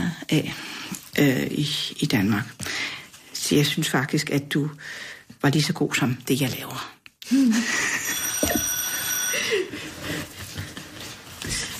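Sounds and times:
speech: 0:00.3 - 0:02.6, 0:03.5 - 0:07.7
alarm clock ringing with high-pitched electronic tone: 0:07.9 - 0:10.4.

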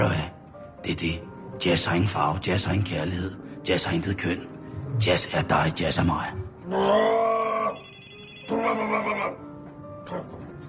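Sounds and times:
speech: 0:00.9 - 0:07.4
telephone ringing with bright buzzing electronic tone: 0:07.8 - 0:08.8.

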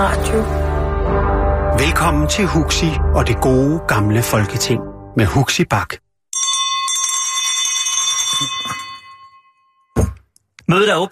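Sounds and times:
speech: 0:00.0 - 0:01.2, 0:01.8 - 0:06.5, 0:10.7 - 0:11.1
bell struck to open a meeting: 0:06.3 - 0:10.1.

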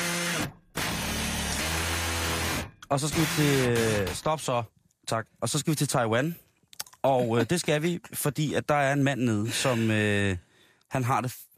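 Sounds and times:
power drill whirring: 0:00.0 - 0:04.3
speech: 0:02.9 - 0:06.4, 0:07.0 - 0:11.5.

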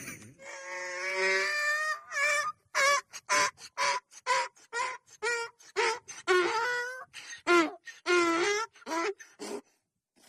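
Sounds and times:
donkey braying: 0:00.3 - 0:09.8.

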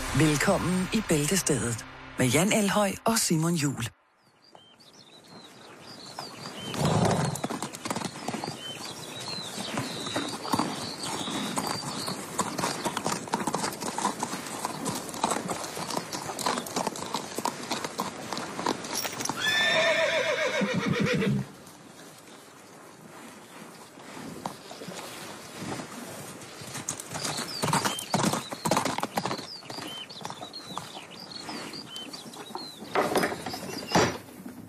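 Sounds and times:
speech: 0:00.2 - 0:04.0
horses clip-clopping: 0:04.5 - 0:34.6
loud horse neigh: 0:19.2 - 0:21.5.

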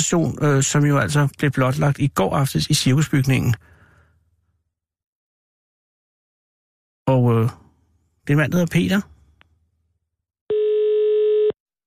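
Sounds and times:
speech: 0:00.1 - 0:03.7, 0:07.1 - 0:07.6, 0:08.3 - 0:09.1
low-pitched electronic telephone ringing tone: 0:10.5 - 0:11.6.

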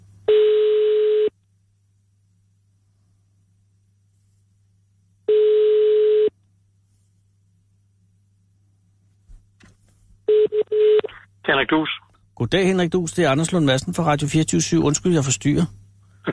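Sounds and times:
ringback tone of an outgoing phone call placed by a radio host: 0:00.3 - 0:01.3, 0:05.3 - 0:06.3, 0:10.3 - 0:11.1
speech: 0:11.6 - 0:16.3.

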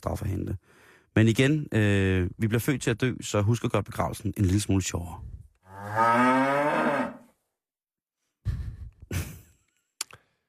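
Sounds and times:
speech: 0:00.0 - 0:06.8
cow mooing: 0:05.7 - 0:07.3.

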